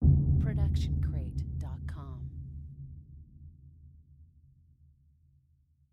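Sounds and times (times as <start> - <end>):
designer sub boom hit: 0.0 - 4.4.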